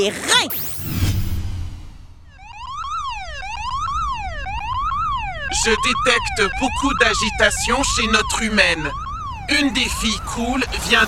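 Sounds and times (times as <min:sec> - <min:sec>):
speech: 0:00.0 - 0:01.0, 0:05.6 - 0:11.0
electronic alarm siren effect sounding a cortisol alert: 0:00.5 - 0:11.0.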